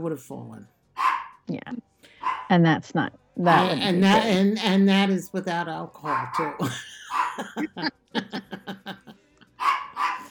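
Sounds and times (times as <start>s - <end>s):
speech: 0.0s - 0.8s, 1.5s - 1.9s, 2.5s - 8.5s
dog barking at a door: 1.0s - 1.4s, 2.2s - 2.5s, 6.0s - 7.7s, 9.6s - 10.2s
laughter: 6.4s - 9.6s.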